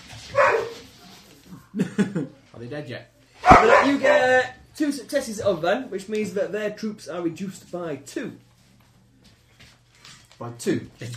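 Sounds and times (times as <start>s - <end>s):
dog barking: 0.3s - 0.9s, 3.4s - 4.5s
speech: 2.0s - 8.5s, 10.4s - 11.1s.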